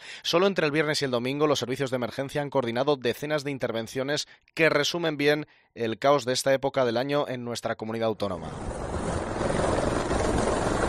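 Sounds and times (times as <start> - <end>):
speech: 0.2 - 8.8
emergency rescue helicopter rotor and engine roar on an operation: 8.5 - 10.8.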